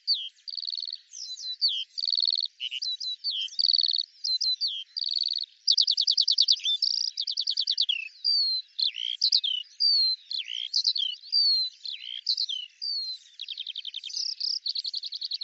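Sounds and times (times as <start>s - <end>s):
Eurasian skylark singing: 0.0s - 15.4s.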